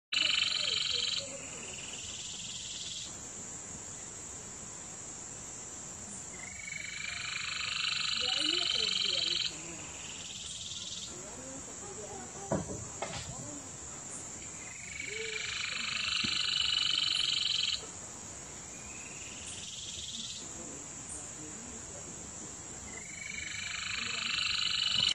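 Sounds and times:
stripe-chested antwren: 0.2 - 3.2, 6.4 - 12.6, 14.1 - 17.9, 18.8 - 20.5, 22.9 - 25.1.

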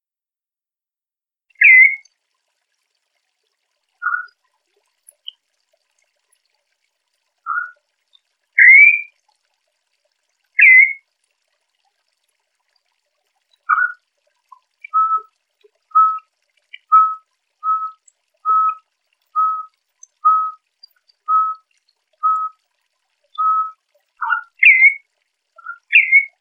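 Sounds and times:
campo troupial singing to excite a male: 1.6 - 2.0, 4.0 - 4.3, 7.5 - 7.8, 8.6 - 9.1, 10.6 - 11.0, 13.7 - 14.0, 14.8 - 15.3, 15.9 - 16.2, 16.8 - 18.8, 19.4 - 20.6, 21.3 - 21.6, 22.2 - 22.5, 23.4 - 25.0, 25.6 - 26.4.

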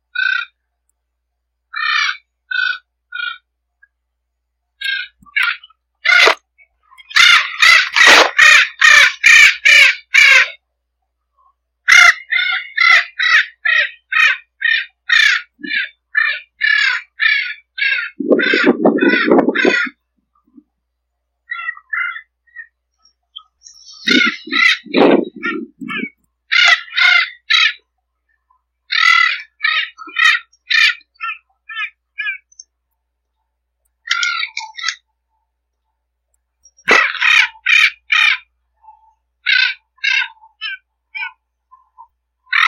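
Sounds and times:
Spix's macaw calling: 0.1 - 0.6, 1.7 - 3.5, 4.8 - 6.4, 7.0 - 10.6, 11.9 - 20.0, 21.5 - 27.9, 28.9 - 32.7, 34.0 - 35.1, 36.7 - 42.6.

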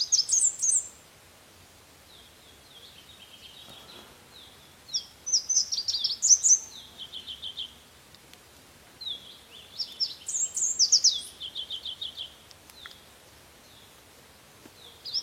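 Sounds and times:
red warbler singing: 0.0 - 1.0, 2.1 - 7.8, 9.0 - 13.0, 14.8 - 15.2.

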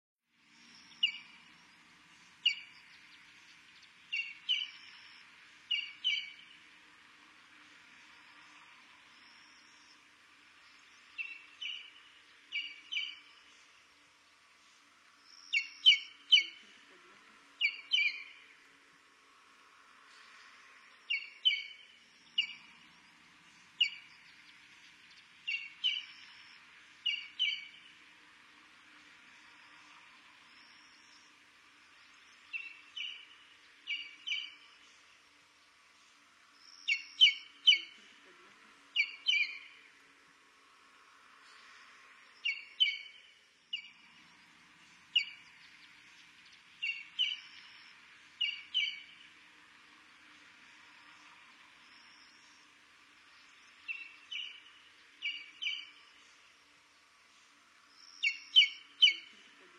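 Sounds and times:
brown-crested bustard singing: 0.5 - 6.8, 8.4 - 13.8, 15.2 - 18.6, 20.2 - 28.1, 29.4 - 35.2, 36.0 - 38.3, 38.9 - 40.0, 41.4 - 49.4, 51.0 - 56.7, 57.3 - 59.7.

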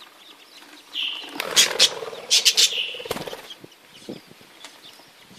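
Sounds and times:
budgerigar wing flapping and rustling: 0.6 - 3.7
budgerigar warbling chatter: 0.9 - 3.6.

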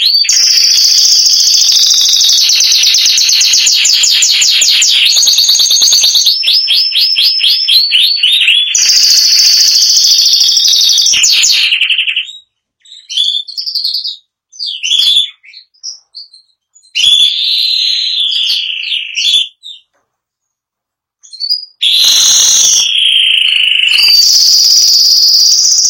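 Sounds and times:
Spanish giboso canary song of loud buzzy trills and chirps: 0.0 - 25.8.

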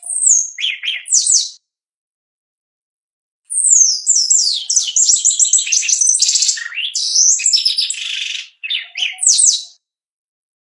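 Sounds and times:
shiny cowbird song: 0.0 - 1.6, 3.5 - 9.8.

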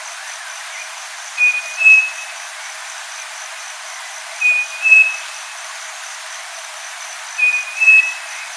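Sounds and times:
steady insect buzz: 0.0 - 8.5
striped cuckoo whistling song: 1.4 - 2.2, 4.4 - 5.3, 7.4 - 8.3.

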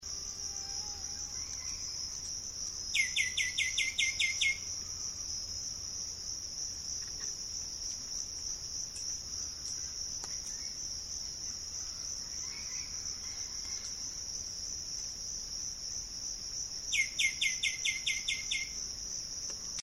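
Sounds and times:
caneleiro preto song: 2.9 - 5.2, 7.0 - 14.2, 16.9 - 18.9.

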